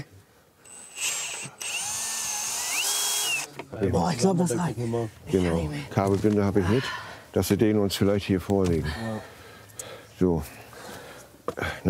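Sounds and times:
power drill boring through material: 0.6s - 3.5s
speech: 3.8s - 9.3s, 10.2s - 10.6s.

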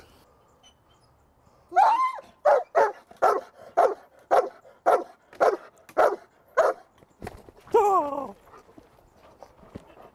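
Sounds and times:
dog barking during bite-sleeve training: 2.4s - 6.8s.

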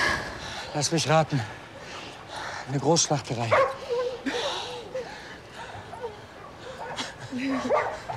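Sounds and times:
speech: 0.7s - 1.6s, 2.7s - 3.8s, 7.3s - 8.1s
several dogs barking, yipping and whining: 3.4s - 8.1s.

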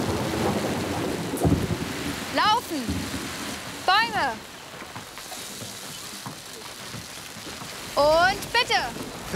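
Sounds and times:
deep rumbling roll of thunder: 0.0s - 4.5s
steady rain in a thunderstorm: 0.0s - 9.3s
speech: 8.0s - 9.3s.

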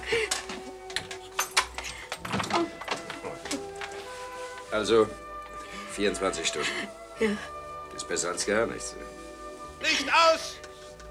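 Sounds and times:
door being shut with sharp clunks and rattles: 0.3s - 4.0s
speech: 4.7s - 5.2s, 6.0s - 9.2s, 9.8s - 10.6s.

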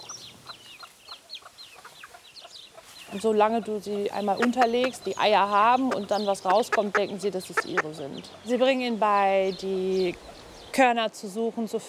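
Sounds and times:
bantam hens clucking among mixed farmyard poultry: 0.0s - 8.6s
speech: 3.1s - 11.8s.

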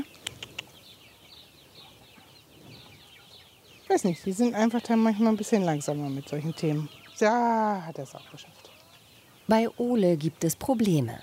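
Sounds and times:
young chickens clucking and peeping: 0.0s - 11.2s
speech: 3.9s - 8.7s, 9.5s - 11.2s.

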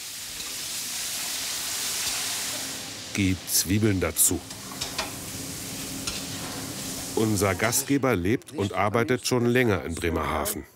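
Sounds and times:
meat searing in hot oil in kettle: 0.0s - 7.9s
speech: 3.2s - 4.6s, 7.2s - 10.7s.

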